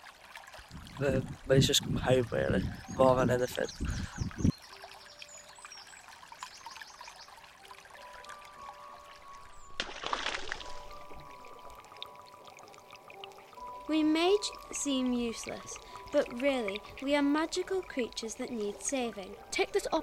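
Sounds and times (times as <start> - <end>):
speech: 1.0 - 4.3, 15.4 - 20.0
River Rye flowing and trickling over stones: 4.5 - 20.0.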